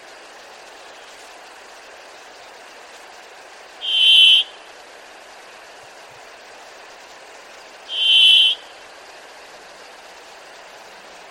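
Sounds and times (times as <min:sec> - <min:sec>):
faint background hiss: 0:00.0 - 0:11.2
bird call steady high whistled note: 0:03.8 - 0:04.6, 0:07.9 - 0:08.6.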